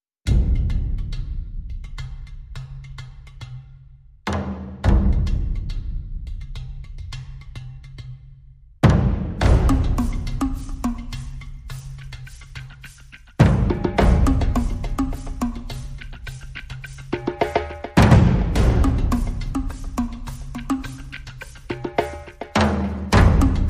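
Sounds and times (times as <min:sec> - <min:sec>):
percussion: 0:00.2 - 0:23.6
tonal drum: 0:04.3 - 0:06.2, 0:08.8 - 0:11.4, 0:13.4 - 0:16.2, 0:17.1 - 0:23.6.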